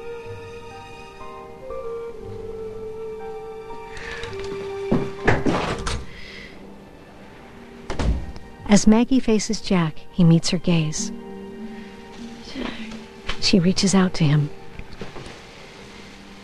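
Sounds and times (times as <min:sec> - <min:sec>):
steady quiet tonal hum: 0:00.0 - 0:16.4
front door opening and shutting: 0:03.7 - 0:08.6, 0:12.0 - 0:13.6
speech: 0:08.7 - 0:11.3, 0:13.4 - 0:14.6.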